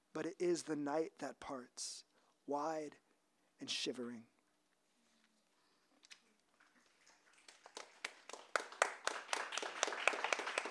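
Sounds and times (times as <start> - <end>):
speech: 0.2 - 3.0, 3.6 - 4.3
small audience applauding after a reading: 7.2 - 10.6.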